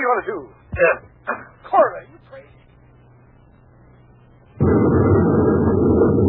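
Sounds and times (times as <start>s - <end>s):
speech: 0.1s - 1.1s
heavy sustained low rumble: 4.1s - 6.2s
space grenade bursting among rocks: 4.6s - 6.2s.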